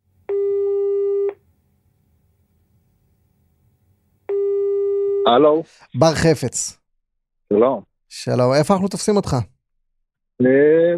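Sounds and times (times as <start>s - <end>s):
telephone ringback tone: 0.3s - 1.4s, 4.3s - 5.3s
speech: 5.3s - 6.8s, 7.5s - 9.5s, 10.4s - 10.9s.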